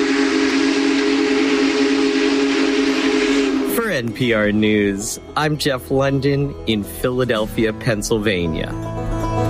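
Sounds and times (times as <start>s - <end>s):
Big Boy steam locomotive whistle blowing: 0.0s - 6.1s
speech: 4.0s - 9.0s.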